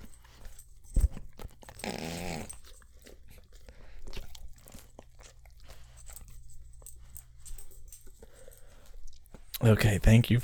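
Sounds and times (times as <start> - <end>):
dog chewing: 0.0 - 9.6
dog growling: 1.6 - 3.1
speech: 9.6 - 10.4.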